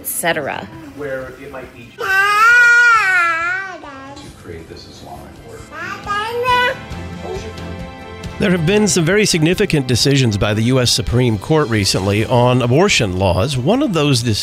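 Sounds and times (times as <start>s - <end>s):
speech: 0.0s - 2.4s, 4.4s - 14.4s
toddler crying: 2.0s - 4.2s, 5.6s - 7.0s
toddler babbling and fussing: 2.0s - 4.3s, 5.6s - 7.5s.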